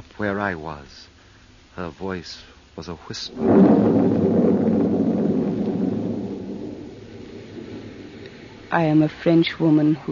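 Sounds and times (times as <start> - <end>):
speech: 0.2 - 1.1, 1.8 - 4.0, 8.7 - 10.1
long deep roll of thunder: 3.3 - 9.9.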